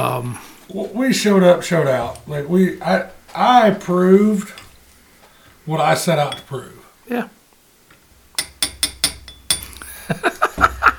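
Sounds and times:
speech: 0.0 - 4.6, 5.6 - 7.4, 10.1 - 10.4
shot glass clinking against a hard surface: 8.4 - 9.9
laughter: 9.8 - 10.9.

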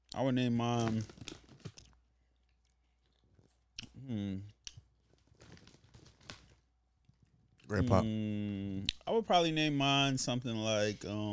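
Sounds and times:
crunching and chewing of a snack: 0.1 - 7.7
speech: 0.2 - 1.3, 4.1 - 4.5, 7.7 - 11.3
person humming: 7.7 - 8.6.

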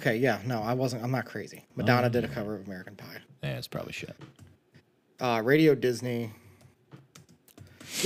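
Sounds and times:
speech: 0.0 - 4.5, 5.2 - 6.4
typing on a computer keyboard: 6.6 - 8.0.

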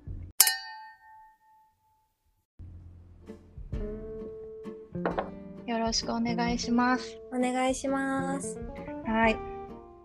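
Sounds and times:
glasses clinking in a toast: 0.4 - 1.7
speech: 5.9 - 9.5.

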